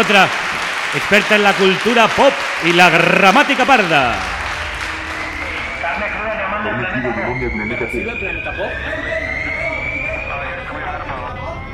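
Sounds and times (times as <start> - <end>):
speech: 0.0 - 4.3, 7.1 - 9.3
crowd applause: 0.0 - 9.0.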